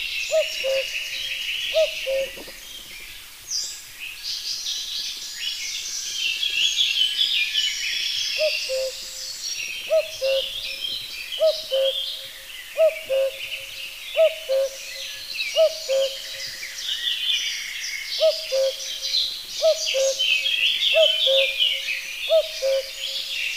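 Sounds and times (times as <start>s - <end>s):
chorus of other birds twittering: 0.0s - 23.5s
common cuckoo calling: 0.3s - 1.1s, 1.7s - 2.5s, 8.4s - 9.2s, 9.9s - 10.8s, 11.4s - 14.9s, 15.6s - 16.5s, 18.2s - 19.0s, 19.6s - 23.1s
speech: 0.3s - 1.1s, 1.7s - 2.6s.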